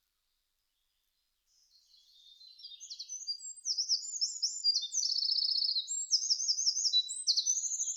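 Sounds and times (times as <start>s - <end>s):
Eurasian wren song: 1.7s - 7.9s.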